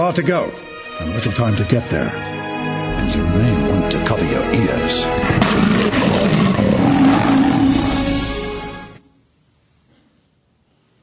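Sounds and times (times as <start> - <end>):
speech: 0.0 - 2.3, 3.0 - 7.3
lion roaring: 5.0 - 8.5.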